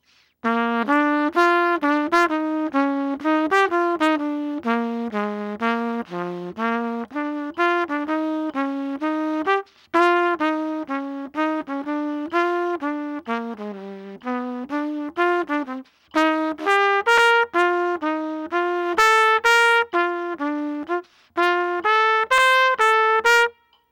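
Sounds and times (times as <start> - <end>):
bassline: 0.5 - 23.3.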